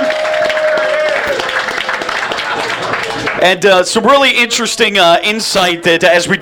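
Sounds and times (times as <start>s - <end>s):
whistle or cheer: 0.0s - 1.8s
crowd applauding: 0.0s - 3.6s
speech: 3.4s - 6.3s.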